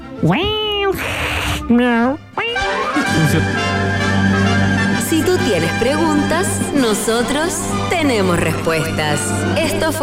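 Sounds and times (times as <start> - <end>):
cat meowing: 0.2 - 3.0
speech: 0.2 - 4.0, 5.1 - 10.0.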